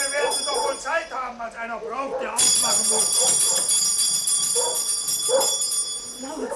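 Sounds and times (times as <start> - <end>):
electric doorbell rung hard and insistently: 0.0 - 1.1, 2.4 - 6.5
speech: 1.4 - 3.5.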